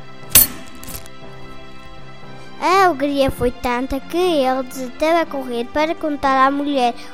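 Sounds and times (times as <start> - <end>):
large bag of coins jingling: 0.4 - 1.1
speech: 2.6 - 7.1.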